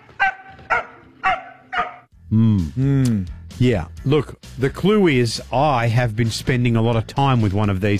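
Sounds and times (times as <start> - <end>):
dog giving high-pitched barks: 0.0 - 2.1
speech: 2.3 - 7.9.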